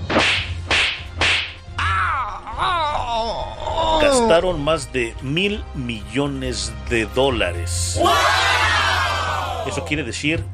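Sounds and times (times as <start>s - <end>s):
person slapping their own face: 0.0s - 1.6s
strained wavering vocal sound: 1.8s - 4.4s
speech: 4.3s - 8.6s, 9.6s - 10.5s.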